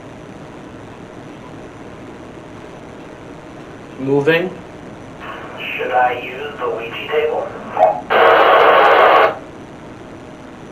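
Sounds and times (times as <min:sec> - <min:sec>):
speech: 0:04.0 - 0:04.6, 0:05.8 - 0:08.0
loud radio static: 0:05.2 - 0:09.5.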